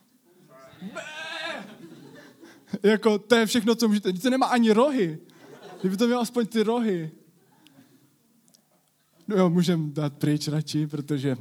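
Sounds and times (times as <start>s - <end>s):
laughter: 0.4s - 2.8s, 5.3s - 6.3s
person imitating a wavering nasal sheep bleat: 0.6s - 1.7s
speech: 2.8s - 7.2s, 9.3s - 11.3s.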